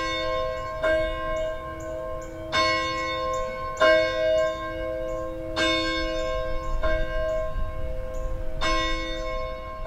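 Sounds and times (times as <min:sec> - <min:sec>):
church bell ringing: 0:00.0 - 0:09.8
faint outdoor noise: 0:00.0 - 0:09.8.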